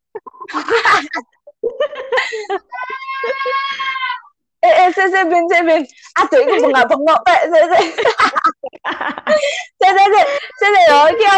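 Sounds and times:
laughter: 0.2s - 4.1s, 6.2s - 11.3s
speech: 0.5s - 1.4s, 5.0s - 11.3s
person screaming and yelling: 2.7s - 4.3s.

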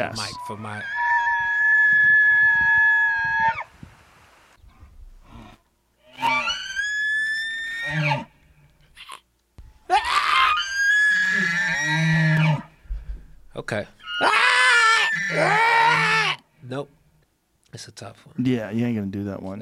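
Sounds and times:
speech: 0.0s - 1.0s, 13.7s - 14.4s, 16.7s - 17.0s, 17.7s - 19.6s
person imitating a bull elk scream: 0.1s - 3.7s, 6.1s - 8.3s, 9.9s - 12.6s, 14.0s - 16.4s.

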